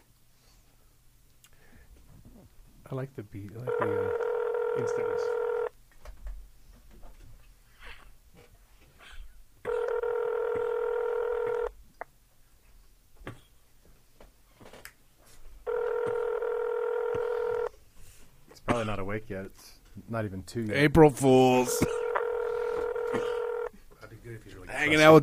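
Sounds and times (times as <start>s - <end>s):
speech: 2.9s - 5.4s, 19.2s - 22.0s, 24.3s - 25.2s
telephone tones over a speakerphone: 3.7s - 5.7s, 9.7s - 11.7s, 15.7s - 17.7s, 21.5s - 23.8s.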